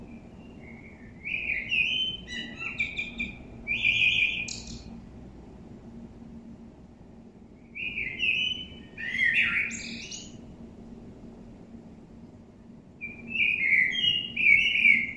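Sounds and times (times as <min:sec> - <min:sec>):
common blackbird Turdus merula singing a flute-like warble: 0:00.1 - 0:04.9, 0:07.7 - 0:10.4, 0:13.0 - 0:15.1.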